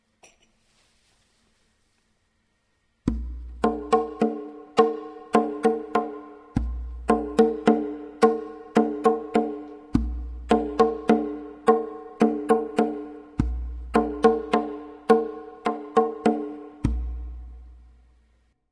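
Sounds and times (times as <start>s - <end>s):
tonbak goblet drum: 3.1s - 17.8s.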